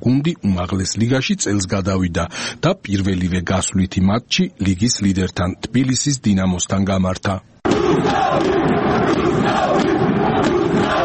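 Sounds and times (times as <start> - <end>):
speech: 0.0 - 9.9
football fans chanting at a stadium after a win: 7.7 - 11.0.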